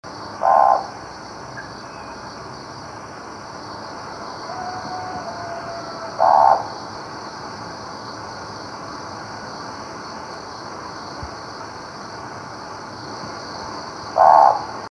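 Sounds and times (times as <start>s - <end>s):
owl: 0.4s - 1.0s, 4.2s - 6.8s, 14.1s - 14.8s.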